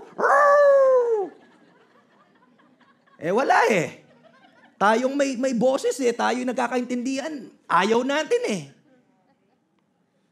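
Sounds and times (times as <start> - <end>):
dog barking: 0.0 - 0.7
laughter: 0.0 - 5.3
speech: 3.2 - 4.0, 4.8 - 8.8.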